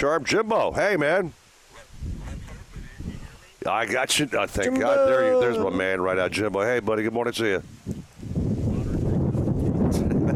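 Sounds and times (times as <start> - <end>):
speech: 0.0 - 1.4, 3.6 - 8.0
strong wind buffeting the microphone: 1.8 - 3.5, 4.2 - 10.3.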